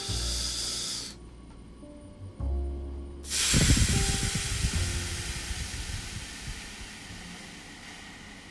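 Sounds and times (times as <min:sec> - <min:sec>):
slow deep breathing: 0:00.0 - 0:01.2, 0:03.3 - 0:08.4.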